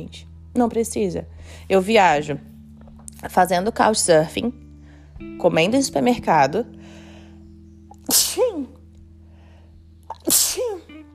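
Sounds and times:
speech: 0:00.0 - 0:02.5, 0:03.2 - 0:04.6, 0:05.2 - 0:07.0
low steady hum: 0:00.0 - 0:11.1
person sneezing: 0:08.0 - 0:08.6, 0:10.1 - 0:10.8.

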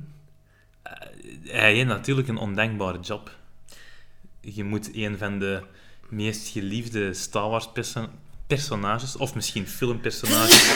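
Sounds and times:
speech: 0:01.4 - 0:03.4, 0:04.4 - 0:10.7
loud sharp sneeze: 0:10.2 - 0:10.7.

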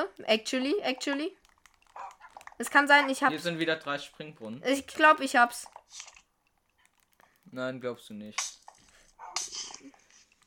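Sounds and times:
speech: 0:00.0 - 0:01.4, 0:02.6 - 0:06.2, 0:07.5 - 0:08.6
video game dogs barking: 0:01.9 - 0:03.4, 0:09.2 - 0:09.6.

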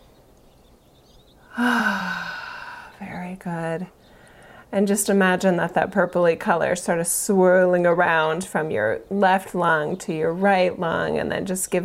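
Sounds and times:
deep breath in during a guided visualization exercise: 0:01.5 - 0:03.0
faint voiced hum: 0:01.5 - 0:04.0
speech: 0:01.6 - 0:02.0, 0:03.3 - 0:04.0, 0:04.7 - 0:11.8.

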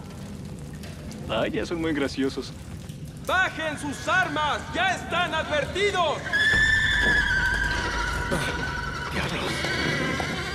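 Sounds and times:
speech: 0:01.3 - 0:07.2, 0:08.3 - 0:08.6
horses neighing and whinnying as they flee: 0:06.3 - 0:10.5
hooves: 0:06.4 - 0:10.5.

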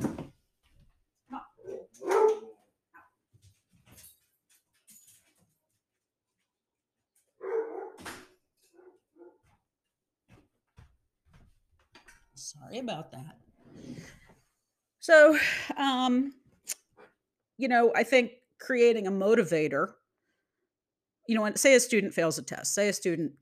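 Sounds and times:
dogs barking: 0:01.4 - 0:02.6, 0:07.4 - 0:08.1
speech: 0:12.5 - 0:13.4, 0:15.1 - 0:16.4, 0:17.6 - 0:20.0, 0:21.3 - 0:23.4.

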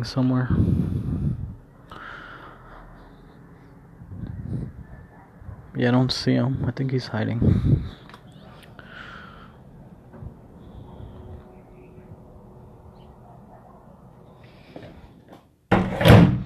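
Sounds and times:
speech: 0:00.0 - 0:00.9, 0:05.8 - 0:08.0
low rumbling: 0:00.0 - 0:13.7
door shutting: 0:15.7 - 0:16.4.

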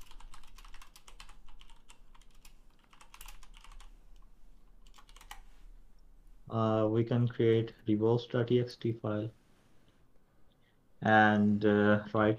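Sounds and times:
rapid typing on a computer keyboard: 0:00.0 - 0:03.9, 0:04.8 - 0:05.4
speech: 0:06.5 - 0:09.4, 0:11.0 - 0:12.3.

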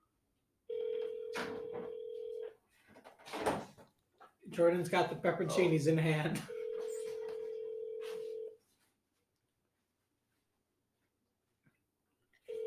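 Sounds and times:
telephone line tone droning: 0:00.7 - 0:02.5, 0:06.5 - 0:08.6, 0:12.5 - 0:12.6
speech: 0:04.5 - 0:06.6.

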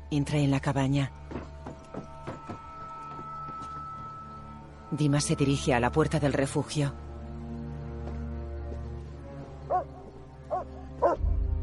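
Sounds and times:
low hum: 0:00.0 - 0:11.6
speech: 0:00.1 - 0:01.5, 0:04.9 - 0:07.0
dog barking at a mountain cabin shelter: 0:09.7 - 0:11.2.

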